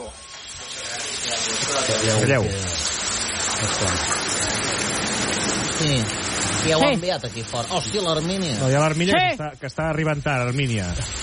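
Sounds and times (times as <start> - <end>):
heavy rain pouring on the Diagonal in Barcelona: 0.0 - 11.2
speech: 1.4 - 2.8, 3.6 - 4.3, 5.8 - 11.2.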